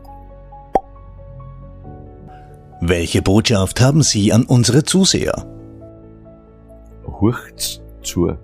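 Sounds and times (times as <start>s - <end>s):
cork pulled from a wine bottle: 0.7s - 1.0s
speech: 2.8s - 5.6s, 7.2s - 8.4s.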